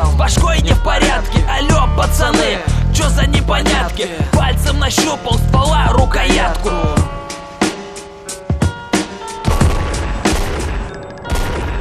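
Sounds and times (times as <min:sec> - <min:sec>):
steady musical backing: 0:00.0 - 0:11.7
speech: 0:02.0 - 0:07.4
sharp gunshot bangs with deep booming low ends: 0:09.5 - 0:11.7.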